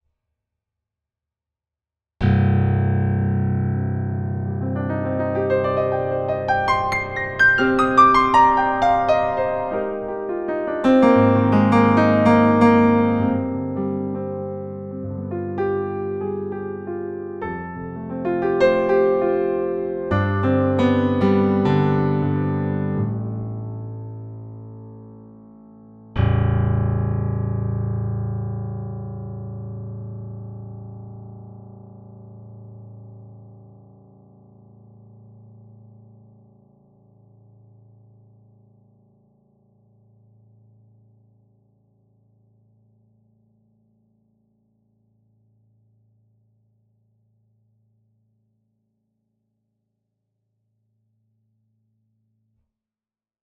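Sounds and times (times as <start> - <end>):
Bosendorfer 290 Imperial grand piano: 2.2 - 32.6.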